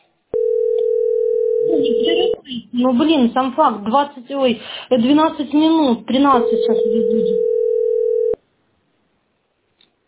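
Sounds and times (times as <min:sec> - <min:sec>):
steady telephone busy tone after a call cuts off: 0:00.4 - 0:02.4, 0:06.4 - 0:08.4
speech: 0:02.8 - 0:07.6.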